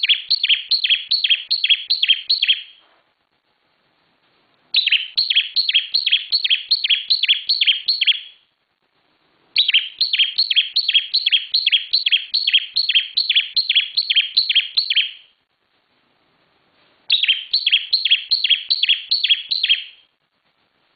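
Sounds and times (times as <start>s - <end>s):
bar-winged prinia chirping song: 0.0s - 2.8s, 4.7s - 8.5s, 9.6s - 15.4s, 17.1s - 20.1s.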